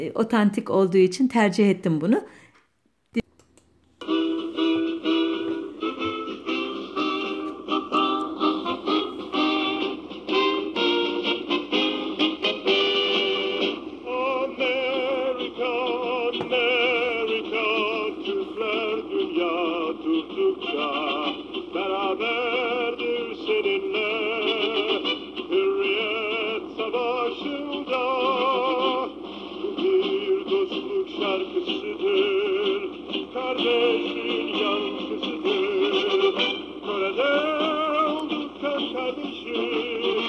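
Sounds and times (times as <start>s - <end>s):
speech: 0.0s - 2.4s
steady hiss of an old recording: 2.2s - 40.2s
brief click: 2.6s - 4.0s
man singing a song on an old scratchy 1954 recording: 14.0s - 40.2s.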